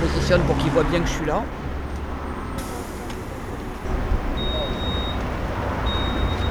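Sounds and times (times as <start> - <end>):
city bus engine rumbling at stop: 0.0 - 6.4
speech: 0.3 - 1.6
faint high electronic beep: 3.9 - 6.4.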